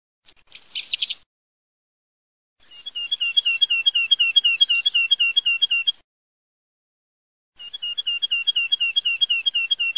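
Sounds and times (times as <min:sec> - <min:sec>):
Eurasian nuthatch birdsong: 0:00.3 - 0:01.2, 0:02.6 - 0:06.0, 0:07.6 - 0:09.9.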